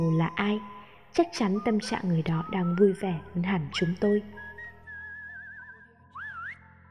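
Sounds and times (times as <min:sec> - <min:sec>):
speech: 0:00.0 - 0:04.4
person whistling a tune outside: 0:01.6 - 0:06.8.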